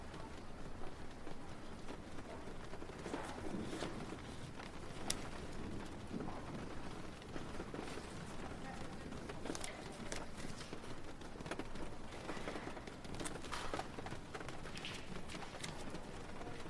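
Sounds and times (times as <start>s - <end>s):
rain falling: 0.0s - 16.6s.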